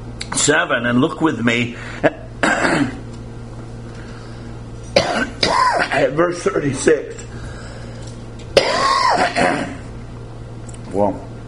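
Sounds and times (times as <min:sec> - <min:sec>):
low steady hum: 0:00.0 - 0:11.4
speech: 0:00.3 - 0:02.2, 0:06.0 - 0:07.3, 0:09.2 - 0:09.8, 0:10.9 - 0:11.2
person coughing after nearly swallowing a cough drop: 0:02.4 - 0:03.0, 0:05.0 - 0:06.2, 0:08.6 - 0:09.8.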